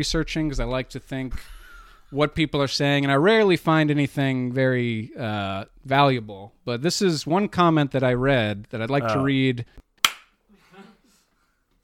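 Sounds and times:
speech: 0.0 - 9.8
sharp hand clap: 10.0 - 10.3.

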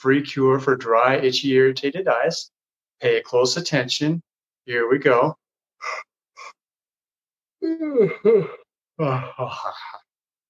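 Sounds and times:
speech: 0.0 - 6.5, 7.6 - 10.0
person yawning deliberately: 7.6 - 10.0
breathy intakes: 7.6 - 10.1.

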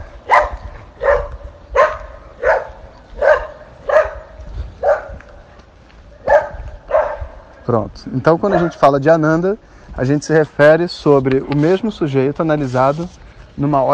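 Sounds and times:
dog barking: 0.2 - 5.2, 6.2 - 7.5, 8.5 - 8.8
speech: 7.7 - 13.9.

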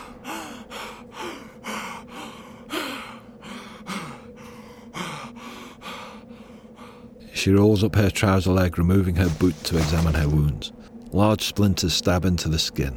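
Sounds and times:
woman panting after sprinting uphill through an orchard: 0.0 - 7.0
speech: 7.4 - 12.9.

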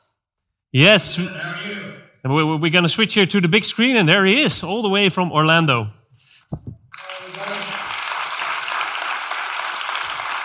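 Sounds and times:
speech: 0.7 - 6.6
audience applause: 6.9 - 10.4.

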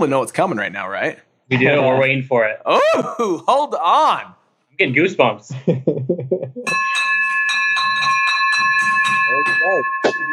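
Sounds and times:
speech: 0.0 - 6.4, 9.6 - 10.3
laughter: 1.5 - 3.7, 4.9 - 6.8
victory bell ringing: 6.7 - 10.3.

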